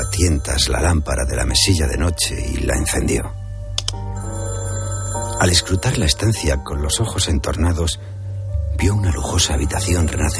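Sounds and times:
speech: 0.2s - 3.4s, 5.4s - 8.2s, 8.8s - 10.3s
quick clicks: 3.8s - 4.0s
telephone ringing with a bright electronic tone: 4.2s - 6.5s.

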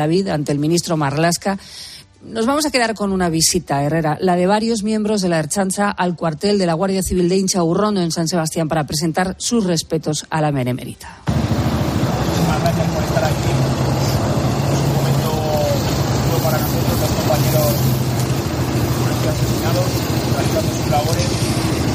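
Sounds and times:
speech: 0.0s - 11.7s, 12.5s - 13.7s, 19.3s - 21.8s
people talking and murmuring outdoors: 0.0s - 21.9s
several car engines idling outside barracks: 11.3s - 21.9s.

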